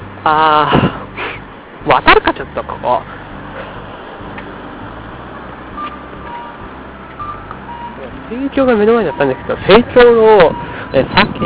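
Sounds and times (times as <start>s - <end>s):
traffic on a busy main road: 0.0s - 11.4s
vehicles rumbling: 0.0s - 11.4s
speech: 0.2s - 1.0s, 1.8s - 3.2s, 8.3s - 11.4s
faint electronic beeps: 5.7s - 8.4s, 9.0s - 9.6s.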